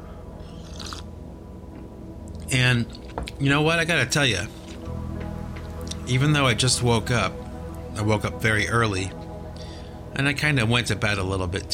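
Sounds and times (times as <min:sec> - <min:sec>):
low steady hum: 0:00.0 - 0:11.7
sip of coffee from a cup: 0:00.5 - 0:01.1
speech: 0:02.5 - 0:04.6, 0:06.1 - 0:07.4, 0:08.0 - 0:09.2, 0:10.2 - 0:11.7.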